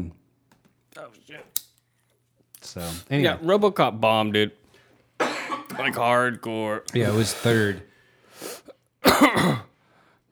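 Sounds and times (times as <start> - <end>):
speech: 1.0 - 1.7, 2.6 - 4.6, 5.2 - 7.9, 9.2 - 9.7
person coughing hard: 5.2 - 6.2, 8.5 - 9.7.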